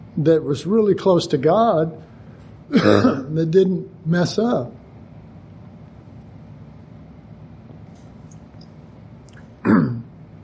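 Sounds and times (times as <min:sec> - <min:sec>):
quiet hum: 0:00.0 - 0:10.4
speech: 0:00.2 - 0:02.1, 0:02.7 - 0:04.8
harsh throat clearing: 0:02.7 - 0:03.4, 0:09.6 - 0:10.1.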